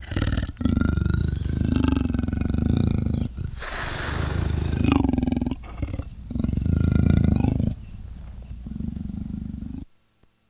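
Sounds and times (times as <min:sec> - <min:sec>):
idle leopard growling: 0:00.0 - 0:09.9.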